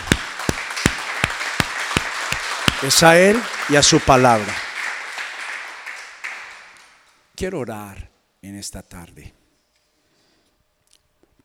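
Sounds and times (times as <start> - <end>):
crowd applauding: 0.0 - 7.0
speech: 2.8 - 4.6, 7.4 - 9.4.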